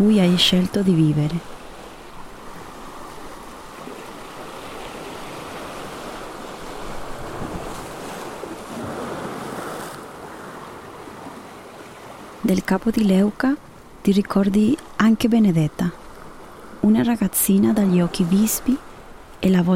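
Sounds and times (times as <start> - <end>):
speech: 0.0 - 1.5, 12.5 - 16.0, 16.8 - 19.7
sea waves breaking against rocks at Capo di Leuca peninsula tip: 1.4 - 12.4.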